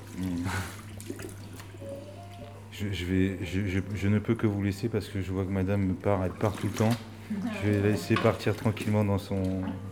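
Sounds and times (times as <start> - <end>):
water streaming from a salon shampoo sprayer: 0.0 - 1.7
faint water drips: 0.0 - 2.7, 5.8 - 9.8
speech: 2.8 - 9.9.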